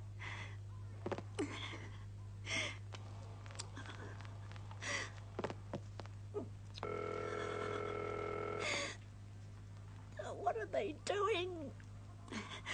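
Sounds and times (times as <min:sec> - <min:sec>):
constant low electrical hum: 0:00.0 - 0:12.7
telephone ringing on the line: 0:06.8 - 0:08.9.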